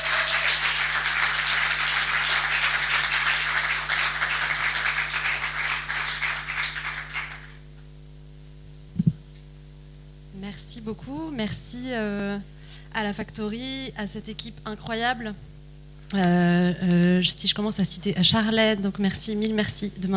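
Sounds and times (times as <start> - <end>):
audience applauding to welcome a speaker: 0.0 - 7.6
low electrical hum: 0.0 - 20.1
speech: 10.9 - 15.5, 16.1 - 20.1.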